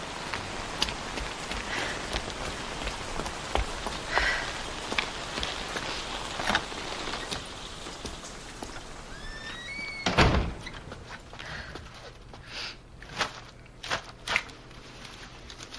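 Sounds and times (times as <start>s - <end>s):
steady dense rain: 0.0s - 10.2s.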